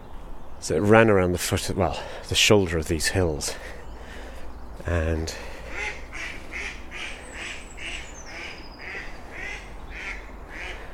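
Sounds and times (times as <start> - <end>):
speech: 0.6 - 3.8, 4.8 - 6.0
female ducks quacking on a canal at dawn in spring: 5.3 - 10.9.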